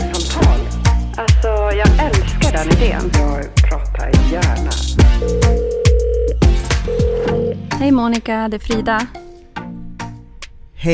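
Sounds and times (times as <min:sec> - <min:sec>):
loud rhythmic thumping beat: 0:00.0 - 0:07.6
speech: 0:02.6 - 0:05.6, 0:07.8 - 0:09.2
electronic telephone dial tone: 0:05.3 - 0:07.6.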